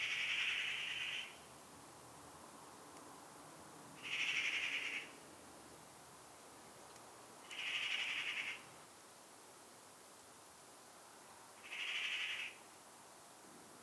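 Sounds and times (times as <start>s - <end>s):
Eurasian magpie Pica pica giving harsh rasping calls: 0.0s - 1.4s, 4.0s - 5.1s, 7.4s - 8.6s, 11.6s - 12.6s
steady background hiss: 0.0s - 13.8s.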